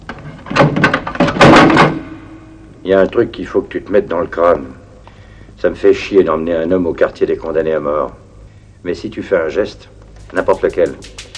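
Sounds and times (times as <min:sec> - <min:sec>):
door pushed shut with heavy knocks, rattling thuds and solid clunk: 0:00.5 - 0:02.2
speech: 0:02.8 - 0:04.8, 0:05.6 - 0:08.2, 0:08.8 - 0:11.2.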